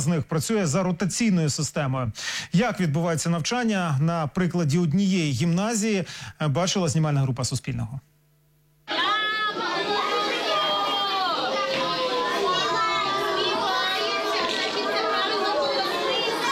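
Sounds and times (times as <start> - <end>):
speech: 0.0 - 8.1
children chattering in a school bomb shelter: 8.9 - 16.4.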